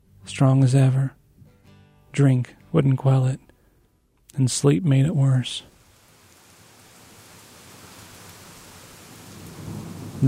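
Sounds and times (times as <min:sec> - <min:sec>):
speech: 0:00.4 - 0:01.2, 0:02.2 - 0:03.4, 0:04.4 - 0:05.7
heavy rain: 0:05.5 - 0:10.2
low thunder rumble: 0:07.7 - 0:10.2.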